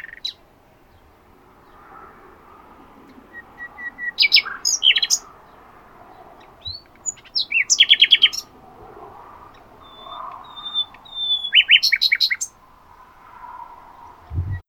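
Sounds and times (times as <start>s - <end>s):
common nightingale Luscinia megarhynchos singing: 0.0s - 1.8s, 3.2s - 8.6s, 9.5s - 12.6s.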